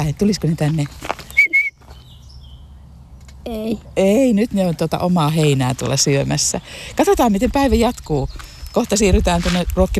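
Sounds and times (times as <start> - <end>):
speech: 0.0 - 1.1, 3.4 - 9.9
person whistling to call roe deer: 1.4 - 1.8.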